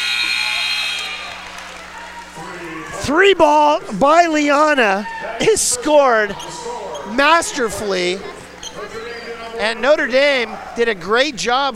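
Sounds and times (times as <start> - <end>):
basketball buzzer at the end of a period in a women's college game: 0.0 - 1.6
speech: 2.6 - 8.8, 9.6 - 11.7.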